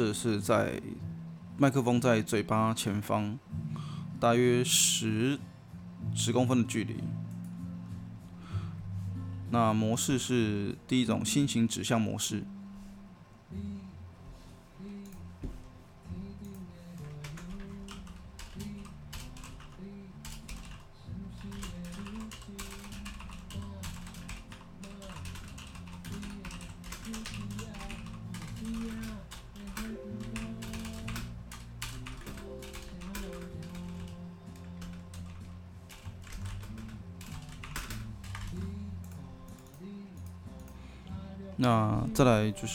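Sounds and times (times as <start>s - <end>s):
speech: 0.0s - 3.6s, 4.2s - 7.3s, 9.5s - 12.6s, 13.5s - 13.8s, 41.7s - 42.7s
soft music: 0.0s - 42.7s
rapid typing on a computer keyboard during a microphone test: 16.4s - 20.8s, 21.4s - 40.8s.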